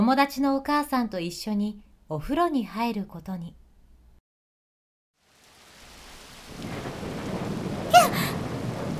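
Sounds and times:
speech: 0:00.0 - 0:03.6
heavy rain: 0:05.2 - 0:08.9
thunder crack rolling during heavy rain: 0:06.5 - 0:08.9.

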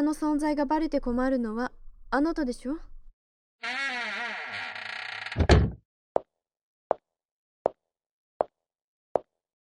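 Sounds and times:
speech: 0:00.0 - 0:02.9
door creaking as it swings: 0:03.6 - 0:05.8
door shutting with a solid thud: 0:05.2 - 0:05.8.

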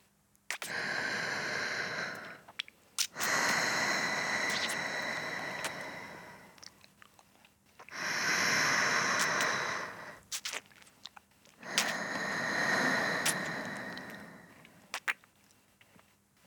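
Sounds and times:
sniffs: 0:00.5 - 0:06.6, 0:07.8 - 0:10.6, 0:11.6 - 0:15.1
slow deep breathing: 0:00.7 - 0:02.5, 0:03.2 - 0:06.6, 0:07.9 - 0:10.3, 0:11.6 - 0:14.9.

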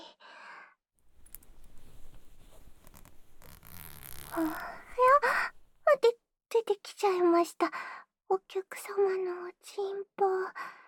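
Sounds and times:
trouser zipper being unzipped: 0:01.0 - 0:05.8
soft rustles: 0:01.0 - 0:05.9
speech: 0:04.4 - 0:04.7, 0:07.0 - 0:07.9, 0:08.5 - 0:10.8.

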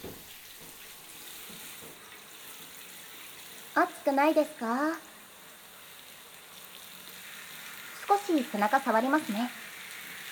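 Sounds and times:
warm water running to rinse a person: 0:00.0 - 0:10.3
speech: 0:03.8 - 0:05.1, 0:08.3 - 0:09.7.

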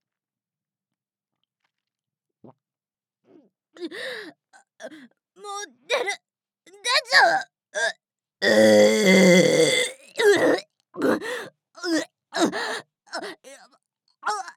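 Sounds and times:
speech: 0:03.8 - 0:09.7
person straining to burp with a long loud groaning belch: 0:08.4 - 0:10.6
short breathy grunts and gasps: 0:08.4 - 0:13.4.

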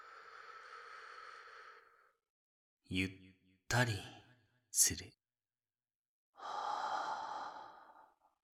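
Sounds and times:
slow deep breath drawn in during a relaxation exercise: 0:00.0 - 0:02.2, 0:06.4 - 0:08.3
speech: 0:02.9 - 0:05.2.

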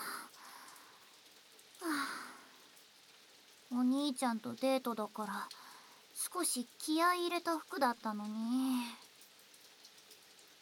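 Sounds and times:
steady soft rain: 0:00.0 - 0:10.6
person sighing: 0:01.8 - 0:02.6
speech: 0:03.7 - 0:05.6, 0:06.3 - 0:09.0.

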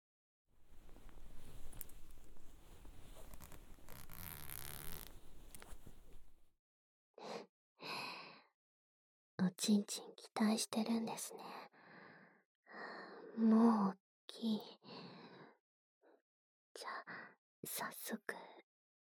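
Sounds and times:
trouser fly zipper being slowly opened: 0:00.6 - 0:06.4
speech: 0:09.6 - 0:11.8, 0:12.7 - 0:15.1, 0:16.8 - 0:18.6.

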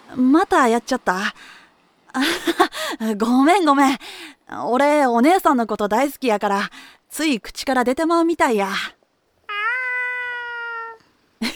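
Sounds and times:
speech: 0:00.2 - 0:09.0
cat meowing: 0:09.5 - 0:11.1.

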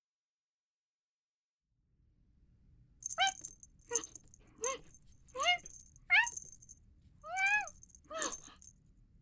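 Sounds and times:
Scottish Fold cat a little over one year old meowing and chirping: 0:03.1 - 0:06.6, 0:07.3 - 0:08.6.

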